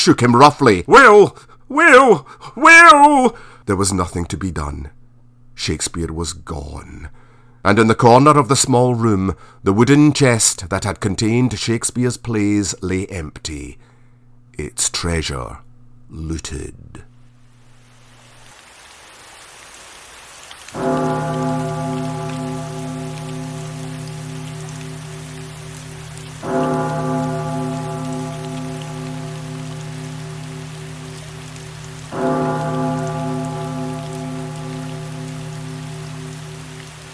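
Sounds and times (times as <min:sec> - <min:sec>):
speech: 0:00.0 - 0:05.0, 0:05.6 - 0:13.9, 0:14.6 - 0:17.1, 0:20.7 - 0:21.6
steady rain: 0:17.3 - 0:37.1.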